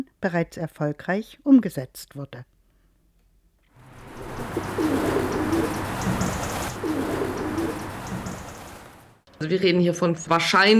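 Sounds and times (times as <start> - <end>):
speech: 0.0 - 2.5, 9.4 - 10.7
rustling: 3.8 - 9.2
domestic pigeons cooing: 3.9 - 9.0.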